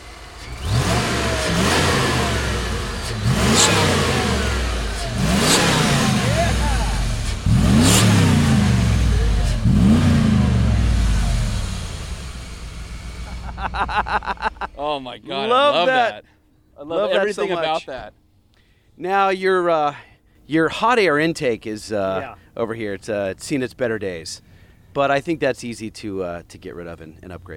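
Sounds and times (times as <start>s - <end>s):
lowered vintage 1980s-90s Ford pickup truck engine revving: 0.0s - 14.8s
laughter: 13.2s - 16.2s
speech: 15.0s - 18.2s, 19.0s - 27.5s.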